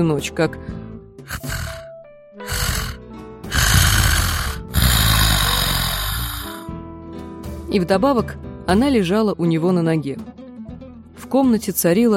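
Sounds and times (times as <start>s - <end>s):
speech: 0.0s - 1.6s, 7.7s - 10.3s, 11.3s - 12.1s
sleeping woman snoring loudly: 1.3s - 6.7s.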